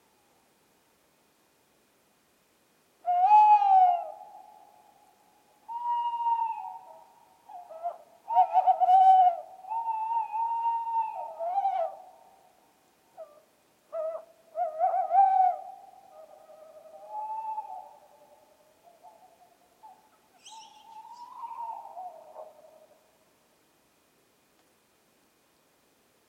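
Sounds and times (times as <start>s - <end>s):
tawny owl: 3.0s - 23.1s.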